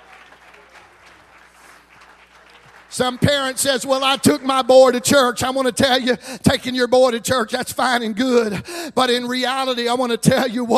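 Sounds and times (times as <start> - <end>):
audience clapping hands: 0.0 - 5.4
speech: 3.0 - 10.7.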